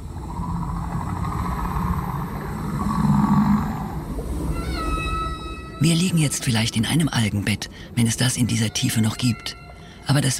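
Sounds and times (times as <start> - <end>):
deep underwater rumble: 0.0 - 5.8
whale song: 0.0 - 7.2, 8.4 - 10.3
speech: 5.8 - 10.3.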